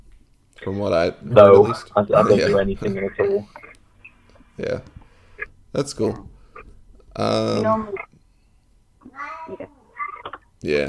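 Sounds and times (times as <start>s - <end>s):
speech: 0.6s - 3.7s, 4.6s - 5.0s, 5.7s - 6.3s, 7.2s - 8.1s, 9.0s - 9.8s, 10.6s - 10.8s
cat meowing to go out: 9.0s - 10.4s.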